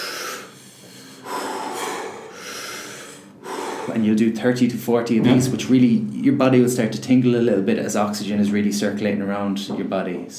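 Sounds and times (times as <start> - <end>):
deep belly breaths during a breathing exercise demonstration: 0.0 - 4.2
speech: 3.9 - 10.3.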